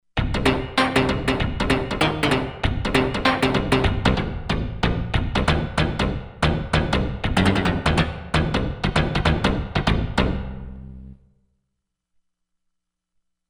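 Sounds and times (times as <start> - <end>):
envelope bass synth: 0.2 - 11.2.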